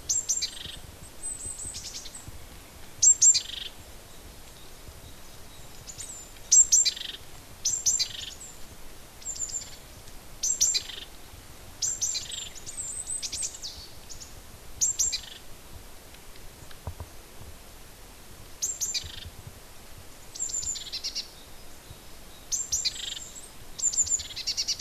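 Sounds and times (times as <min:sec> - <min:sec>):
native hedge bird chirping: 0:00.0 - 0:08.6, 0:09.2 - 0:09.8, 0:10.4 - 0:11.2, 0:11.8 - 0:15.4, 0:20.4 - 0:24.7
faint steady background hiss: 0:00.0 - 0:24.7.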